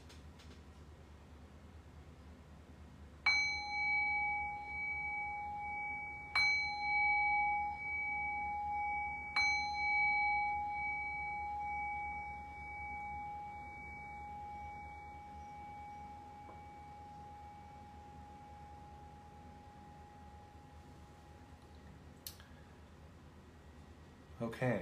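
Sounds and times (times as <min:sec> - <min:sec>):
meditation bell ringing: 0:03.2 - 0:21.6.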